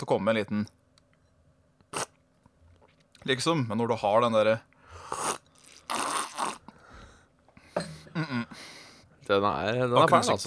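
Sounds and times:
speech: 0.0 - 0.8, 3.2 - 5.2, 8.2 - 10.4
loud wet slurping: 1.9 - 2.2, 5.1 - 6.6.

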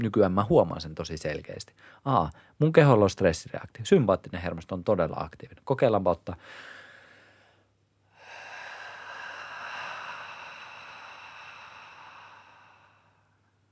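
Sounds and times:
speech: 0.0 - 6.7
long steady airy exhale: 6.4 - 13.4
deep breath in: 6.4 - 13.6.

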